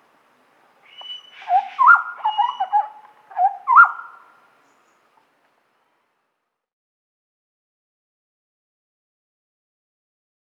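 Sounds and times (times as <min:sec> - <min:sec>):
large scimitar babbler whistled call: 0:00.8 - 0:04.3.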